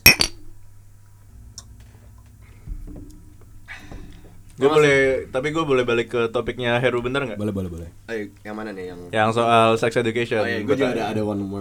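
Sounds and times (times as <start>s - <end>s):
glasses clinking in a toast: 0.0s - 11.5s
low steady hum: 0.0s - 11.5s
scattered taps and clatter: 0.0s - 11.5s
speech: 4.6s - 11.5s.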